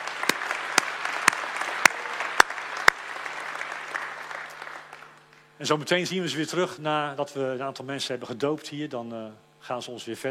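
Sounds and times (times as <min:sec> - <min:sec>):
church audience giving warm applause: 0:00.0 - 0:05.5
sharp individual claps: 0:00.0 - 0:05.5
speech: 0:05.6 - 0:10.2.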